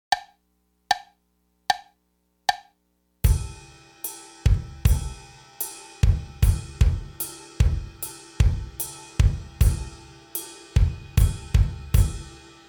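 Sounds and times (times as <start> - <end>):
drums with quarter ride cymbal: 3.2 - 12.6.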